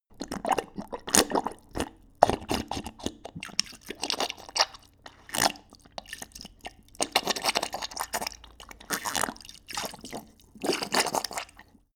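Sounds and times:
dog drinking water bubbling: 0.1 - 11.7.

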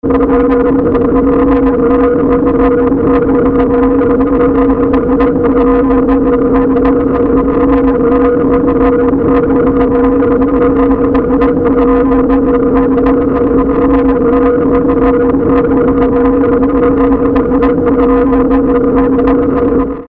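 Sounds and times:
distorted drone: 0.0 - 20.0.

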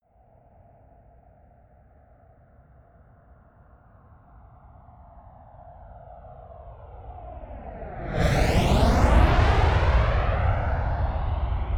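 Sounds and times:
fast close flyby of a Flanker-C military jet turbine: 7.4 - 11.6.

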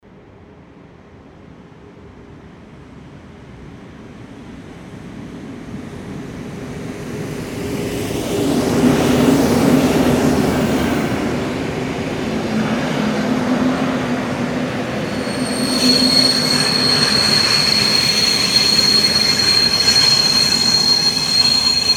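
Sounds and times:
train stopping: 7.7 - 21.9.

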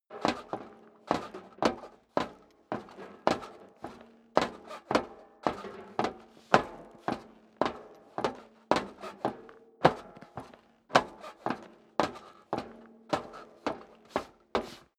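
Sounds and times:
boots stepping on rattling metal stairs going upstairs: 0.1 - 14.9.

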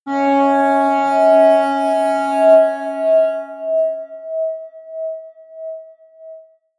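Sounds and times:
high atmospheric feedback synthesizer drone: 0.1 - 6.0.

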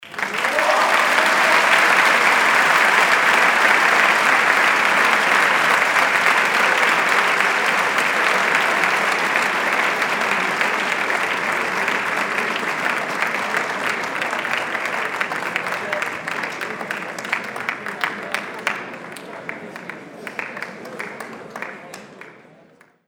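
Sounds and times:
loud applause: 0.0 - 22.9.

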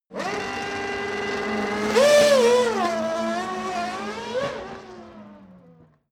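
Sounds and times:
F1 racing car accelerating with kick down: 0.1 - 6.0.

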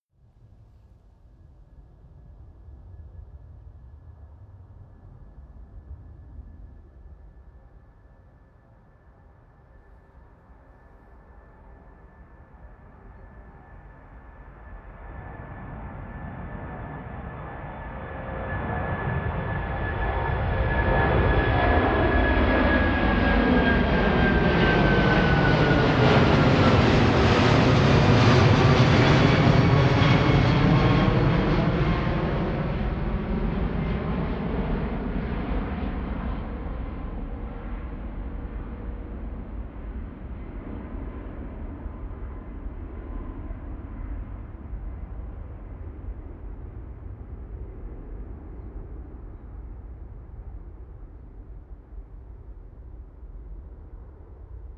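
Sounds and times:
propeller plane flyby: 11.1 - 54.7.

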